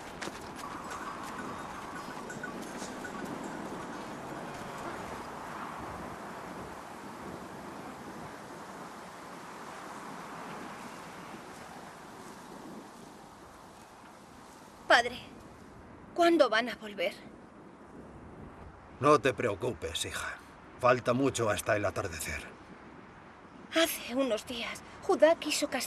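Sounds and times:
flock of sheep being herded, many hooves pattering: 0:00.0 - 0:05.5
speech: 0:14.9 - 0:15.3, 0:16.2 - 0:17.3, 0:19.0 - 0:22.6, 0:23.7 - 0:25.8.

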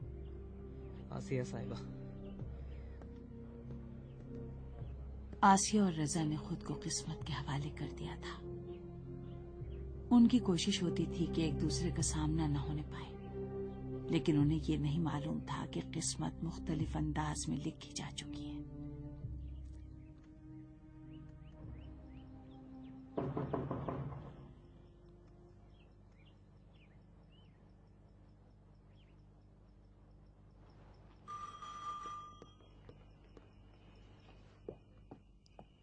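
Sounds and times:
birdsong: 0:00.0 - 0:31.6, 0:32.3 - 0:35.8
speech: 0:01.1 - 0:02.0, 0:05.4 - 0:08.5, 0:10.1 - 0:13.2, 0:14.1 - 0:18.4
knocking at a front door: 0:23.0 - 0:24.7
crickets chirping: 0:24.2 - 0:35.8.

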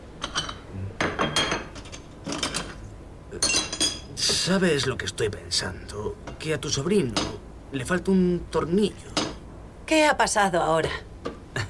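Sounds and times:
cups and metal clinking and rattling as coffee is made in a café kitchen: 0:00.2 - 0:04.4
speech: 0:04.4 - 0:09.2, 0:09.9 - 0:11.1.

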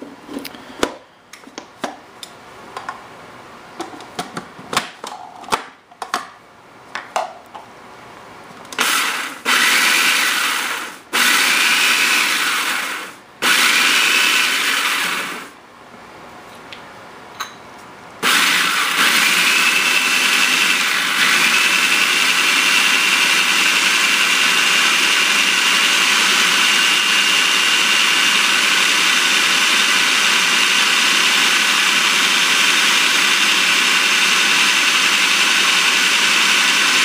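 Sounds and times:
blender motor whirring while blending a dry mixture: 0:08.8 - 0:15.6, 0:18.2 - 0:37.0.

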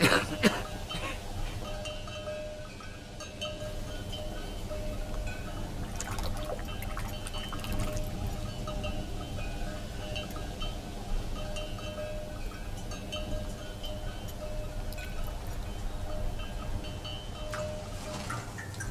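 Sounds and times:
light clinks: 0:00.2 - 0:18.8
fresh drinking water pouring into a container: 0:05.8 - 0:08.5.

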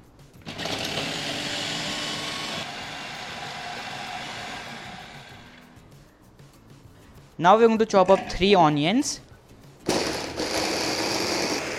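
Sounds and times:
blender pureeing tomatoes: 0:00.5 - 0:05.6, 0:09.9 - 0:11.7
speech: 0:07.4 - 0:09.3.

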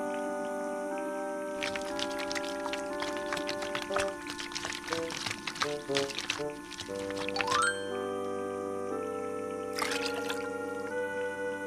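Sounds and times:
steady hum: 0:00.7 - 0:11.6
water swished around in a mouth after brushing teeth: 0:01.6 - 0:07.6, 0:09.8 - 0:10.9.

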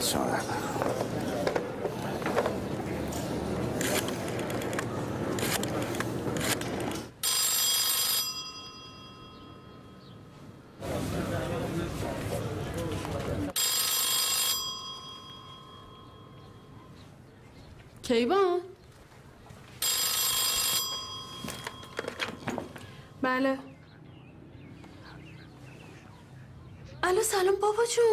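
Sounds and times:
clattering broadband noise: 0:00.5 - 0:08.2, 0:11.1 - 0:14.6, 0:18.9 - 0:23.0
telephone ringing on the caller's end of a call: 0:07.2 - 0:10.1, 0:13.5 - 0:16.8, 0:19.8 - 0:23.1
speech: 0:18.1 - 0:18.6, 0:23.3 - 0:23.7, 0:27.4 - 0:28.1.

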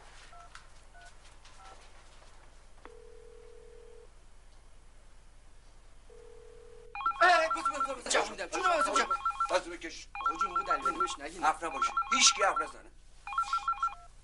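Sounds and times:
telephone ringtone in electronic bursts of stacked tones: 0:02.9 - 0:04.1, 0:06.1 - 0:14.1
people talking: 0:07.2 - 0:12.9.

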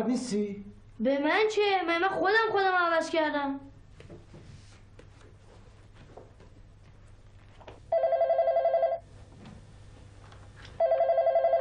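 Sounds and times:
speech: 0:00.0 - 0:03.7
low hum: 0:00.0 - 0:11.5
telephone with trilling electronic bell ringing: 0:07.9 - 0:09.0, 0:10.8 - 0:11.5.

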